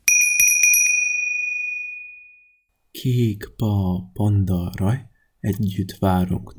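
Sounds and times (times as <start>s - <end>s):
bright metallic bell struck rapidly: 0.0s - 2.6s
speech: 3.0s - 6.5s.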